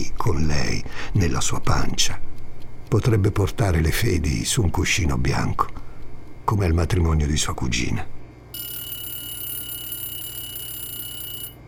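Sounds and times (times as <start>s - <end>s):
speech: 0.0s - 2.3s, 2.9s - 5.8s, 6.5s - 8.1s
timer alarm with steady shrill electronic ringing: 8.5s - 11.6s.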